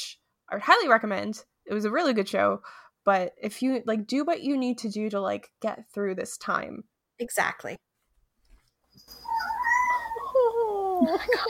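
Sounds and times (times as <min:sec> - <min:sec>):
speech: 0:00.5 - 0:07.9, 0:11.0 - 0:11.4
cat meowing: 0:09.3 - 0:10.7.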